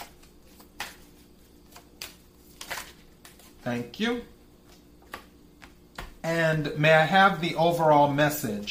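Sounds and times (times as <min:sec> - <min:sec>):
cards drawn from a deck during a card reading: 0:00.0 - 0:03.6
speech: 0:03.6 - 0:04.4, 0:06.2 - 0:08.6.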